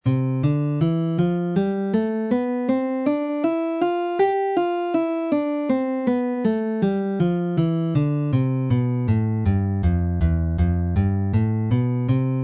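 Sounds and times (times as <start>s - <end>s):
guitar playing an open C major scale: 0.0s - 12.4s.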